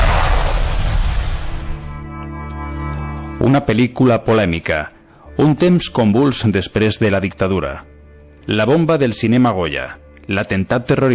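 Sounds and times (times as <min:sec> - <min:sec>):
loud firecracker explosion: 0:00.0 - 0:02.0
speech: 0:03.4 - 0:07.9, 0:08.5 - 0:11.1.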